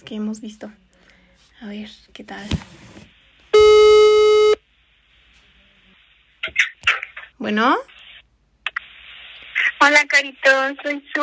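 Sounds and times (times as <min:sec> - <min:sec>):
speech: 0:00.0 - 0:00.9, 0:01.6 - 0:02.9, 0:07.4 - 0:07.9, 0:09.8 - 0:11.2
buzzing electronic telephone ringing tone while placing a call: 0:03.6 - 0:04.6.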